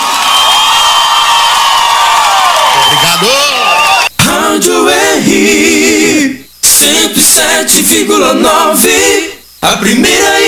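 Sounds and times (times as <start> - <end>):
audience applause: 0.0 - 4.1
audience cheering and whooping: 0.0 - 4.1
speech: 3.2 - 3.5, 5.4 - 10.4.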